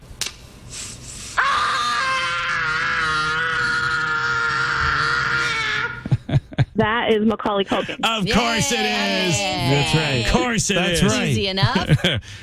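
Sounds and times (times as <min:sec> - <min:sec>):
young boy screaming in a movie clip: 0:01.4 - 0:06.0, 0:08.4 - 0:10.4
laughter: 0:04.8 - 0:12.3
speech: 0:06.8 - 0:12.4.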